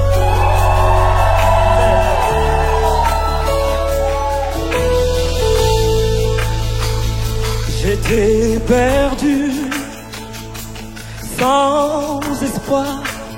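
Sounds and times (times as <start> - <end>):
crowd shouting and whooping joyfully: 0.0 - 5.8
sustained music: 0.0 - 13.3
speech: 12.7 - 13.1.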